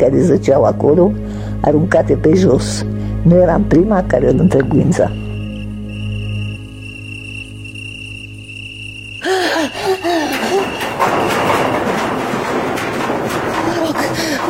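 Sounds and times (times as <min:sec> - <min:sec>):
speech: 0:00.0 - 0:05.2
high cricket trill: 0:03.6 - 0:14.1
loud rushing clattering noise: 0:04.4 - 0:14.4
gasping cries: 0:09.2 - 0:10.8.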